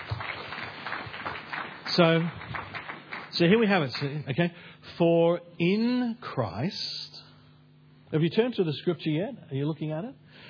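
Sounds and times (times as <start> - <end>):
audience applause: 0.0 - 4.3
speech: 2.0 - 2.4, 3.4 - 7.2, 8.1 - 10.4.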